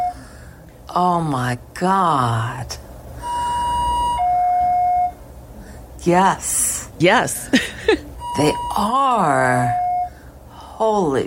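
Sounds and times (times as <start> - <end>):
faint noise: 0.0 - 11.2
speech: 1.0 - 2.8, 6.0 - 9.8, 10.8 - 11.2
two-tone electronic alarm: 3.2 - 5.2, 8.2 - 10.2.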